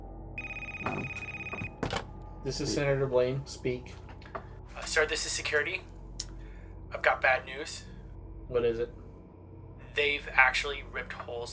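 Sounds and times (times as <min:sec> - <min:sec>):
telephone ringing with a high electronic tone: 0:00.4 - 0:01.8
speech: 0:02.4 - 0:04.0, 0:04.9 - 0:05.9, 0:07.0 - 0:07.9, 0:08.5 - 0:09.0, 0:10.0 - 0:11.5.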